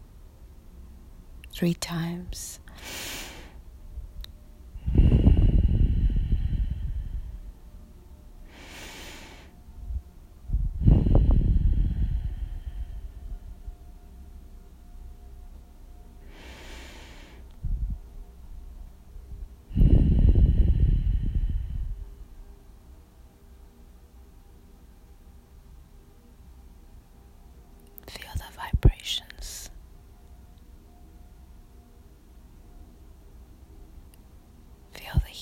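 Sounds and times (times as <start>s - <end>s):
speech: 1.6s - 3.1s
deep breaths in and out during a guided breathing exercise: 2.7s - 3.6s, 4.8s - 7.7s, 8.5s - 9.6s, 10.6s - 13.6s, 16.2s - 17.9s, 19.7s - 22.4s.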